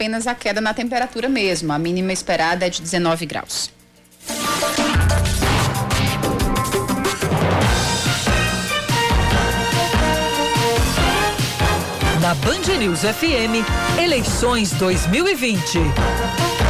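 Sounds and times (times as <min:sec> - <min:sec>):
speech: 0:00.0 - 0:05.4, 0:12.2 - 0:16.6
full-band election news theme jingle with percussive hits and brass-like stabs: 0:04.3 - 0:15.1.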